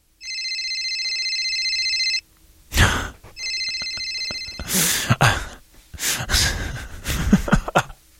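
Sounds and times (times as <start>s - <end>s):
telephone ringing sound effect: 0.2s - 2.3s, 3.4s - 4.8s
breathy sighing bursts: 4.6s - 5.6s
laughter: 6.3s - 8.0s.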